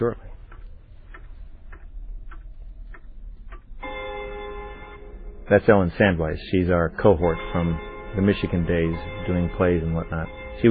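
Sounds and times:
speech: 0.0s - 0.3s, 5.5s - 10.6s
grandfather clock ticking: 0.0s - 10.6s
low rumble: 0.0s - 10.6s
grandfather clock chime ringing: 3.8s - 10.6s.

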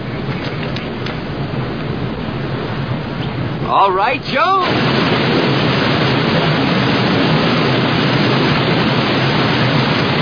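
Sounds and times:
rushing waterfall: 0.0s - 10.2s
speech: 3.7s - 5.2s.

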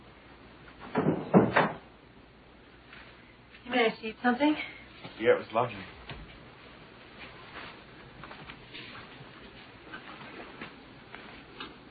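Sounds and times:
door shutting with a muffled thud: 0.8s - 1.9s
speech: 4.0s - 6.0s.

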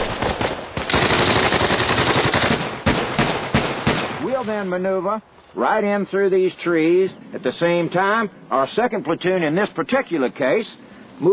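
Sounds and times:
machine gun fire during an infantry training demonstration: 0.0s - 4.3s
speech: 4.5s - 11.3s.

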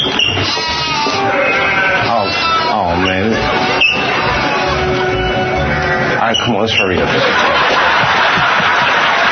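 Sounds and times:
goat bleating: 0.2s - 6.2s
laughter: 2.8s - 9.3s
speech: 6.5s - 7.6s.

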